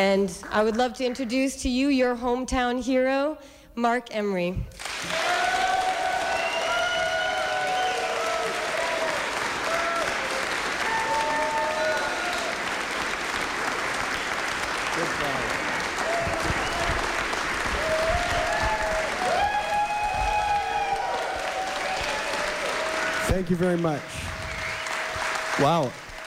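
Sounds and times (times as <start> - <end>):
speech: 0.2 - 4.8, 23.5 - 24.2, 25.6 - 26.0
large audience clapping and applauding: 4.8 - 26.2
scattered cheers from audience: 4.8 - 26.2
audience whistles: 6.2 - 8.2, 16.4 - 17.0, 24.3 - 25.1.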